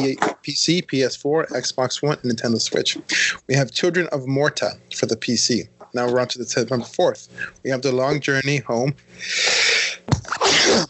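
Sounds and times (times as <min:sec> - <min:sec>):
speech: 0:00.0 - 0:10.8
loud sneeze: 0:02.9 - 0:03.4, 0:09.2 - 0:10.8.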